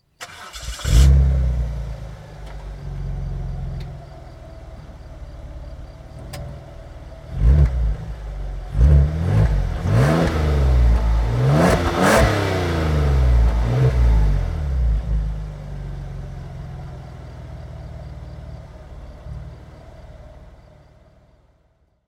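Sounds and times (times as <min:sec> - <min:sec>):
2003 Peugeot 406 Coupe: 0:00.0 - 0:22.0.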